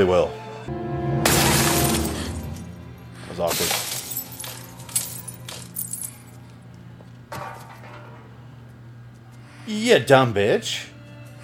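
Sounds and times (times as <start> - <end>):
speech: 0.0 - 0.9, 9.7 - 10.9
steady low hum: 0.8 - 11.4
sugar glass shattering: 1.3 - 2.8, 3.4 - 6.1.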